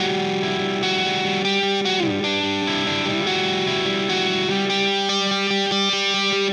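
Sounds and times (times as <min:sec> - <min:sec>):
indie rock lead guitar riff: 0:00.0 - 0:06.5.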